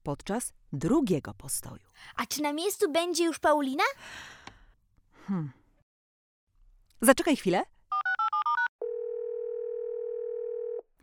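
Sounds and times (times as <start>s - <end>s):
speech: 0.0s - 4.5s, 5.3s - 5.6s, 7.0s - 7.8s
telephone dial tone: 7.9s - 10.9s.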